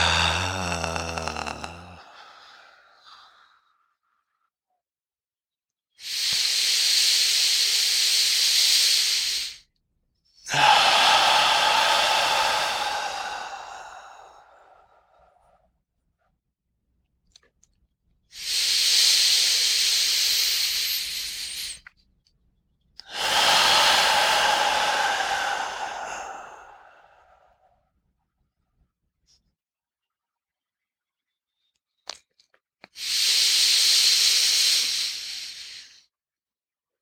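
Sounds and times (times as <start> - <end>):
breathy exhales from an extended-exhale belly-breathing exercise: 0.0 - 3.7, 6.0 - 9.6, 10.5 - 15.5, 18.4 - 21.8, 23.0 - 27.6, 33.0 - 36.0.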